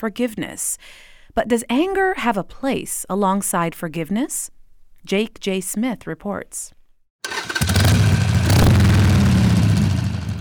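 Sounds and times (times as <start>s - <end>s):
speech: 0.0s - 6.8s
Harley-Davidson motorcycle engine starting and revving: 7.2s - 10.3s.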